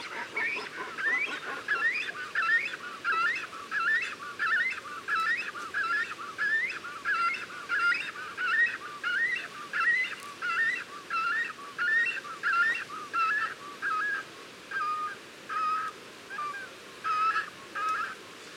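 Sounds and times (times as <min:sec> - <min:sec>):
cormorant calling at the nest: 0:00.0 - 0:14.2
low background hiss: 0:00.0 - 0:18.5.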